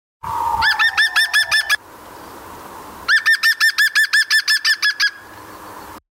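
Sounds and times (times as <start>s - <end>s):
green woodpecker song: 0.3s - 2.3s, 3.1s - 5.6s.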